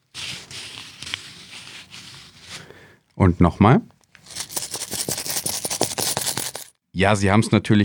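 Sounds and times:
banknotes rustling and crinkling: 0.0s - 2.9s, 4.2s - 6.7s
speech: 3.2s - 3.9s, 7.0s - 7.8s
coins clinking: 4.2s - 6.7s.

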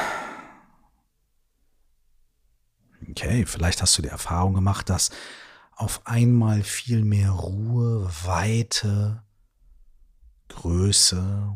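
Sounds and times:
deep breath out through the mouth: 0.0s - 0.8s
speech: 3.2s - 9.2s, 10.5s - 11.5s.

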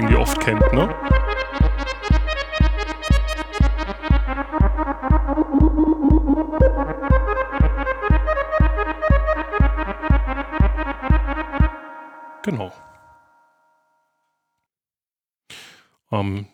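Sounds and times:
classic synthesizer sequence with envelope-modulated filter sweep: 0.0s - 12.9s
speech: 0.3s - 1.3s.

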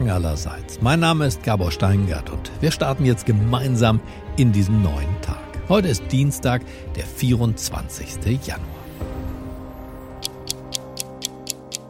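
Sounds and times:
speech: 0.1s - 8.8s
clock ticking: 10.1s - 11.8s.

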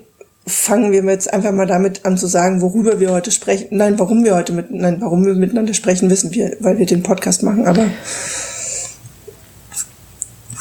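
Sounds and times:
speech: 0.7s - 8.4s
faint breath noises: 7.7s - 9.4s
deep inhale: 7.8s - 9.0s.

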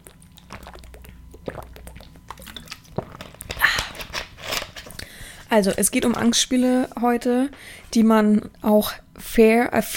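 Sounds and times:
swallows and gulps: 0.0s - 3.5s
wet mouth clicks: 0.0s - 3.9s
person sipping water: 0.0s - 4.2s
speech: 5.5s - 9.9s.

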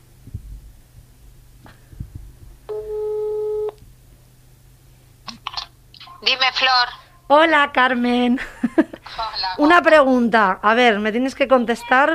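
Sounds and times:
low hum: 0.0s - 12.1s
telephone ringback tone: 2.7s - 3.8s
speech: 6.6s - 12.1s.

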